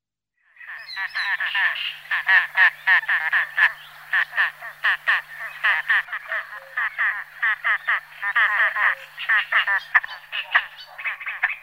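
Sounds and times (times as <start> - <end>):
great crested grebe calling: 0.6 - 11.6.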